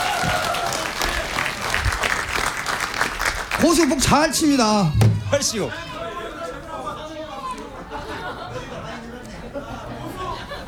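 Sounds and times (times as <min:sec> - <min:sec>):
audience applause: 0:00.0 - 0:05.7
speech: 0:03.6 - 0:05.9
laughter: 0:03.7 - 0:10.6.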